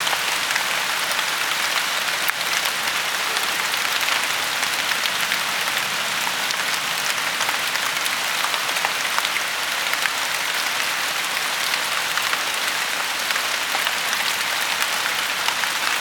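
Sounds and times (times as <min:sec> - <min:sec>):
rain: 0:00.0 - 0:15.9.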